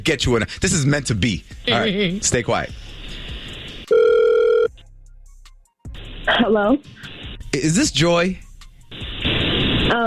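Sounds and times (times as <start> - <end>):
speech: 0.0 - 3.2, 6.4 - 8.4, 9.9 - 10.0
ringback tone from an outgoing phone call: 3.9 - 4.7.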